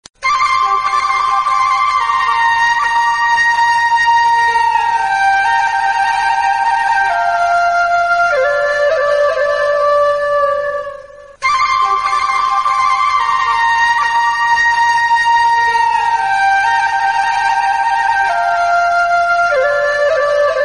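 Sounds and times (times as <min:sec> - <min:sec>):
instrumental flute: 0:00.2 - 0:20.6.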